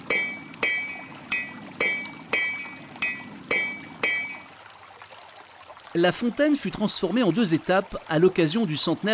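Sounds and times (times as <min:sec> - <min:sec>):
blacksmith hammering metal at a forge: 0:00.0 - 0:04.5
speech: 0:06.0 - 0:09.1.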